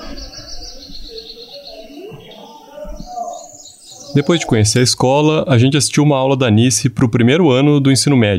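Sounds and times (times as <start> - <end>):
small bird chirping in quick high-pitched notes: 0.0 - 5.1
faint indistinct voices: 0.0 - 8.3
speech: 4.2 - 8.3.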